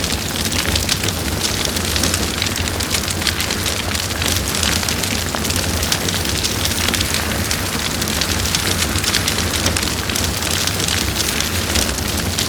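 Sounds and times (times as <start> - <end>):
fire burning in a brazier: 0.0 - 12.4.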